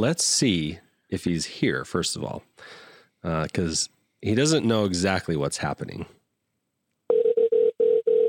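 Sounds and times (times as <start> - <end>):
speech: 0.0 - 6.2
old-fashioned telephone ringing: 7.1 - 8.2.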